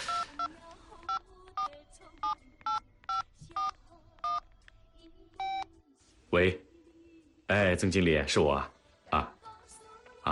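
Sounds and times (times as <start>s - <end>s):
touch-tone beeps of a phone keypad: 0.0s - 0.5s, 1.1s - 4.4s
speech: 6.3s - 6.6s, 7.5s - 9.3s.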